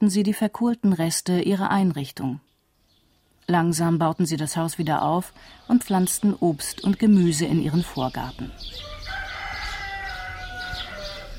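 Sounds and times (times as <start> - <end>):
speech: 0.0 - 2.5, 3.5 - 8.9
outdoor noise: 0.0 - 11.3
chickens in a garden: 8.4 - 11.3
rooster crowing in a garden: 8.6 - 11.3.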